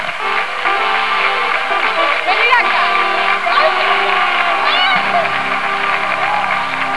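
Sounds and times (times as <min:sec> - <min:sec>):
bad fanfare: 0:00.0 - 0:06.9.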